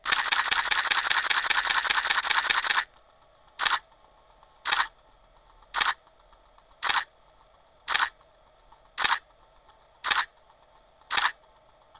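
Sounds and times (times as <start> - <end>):
Pentax K-7 camera shutter in continuous high shooting: 0.0 - 11.9.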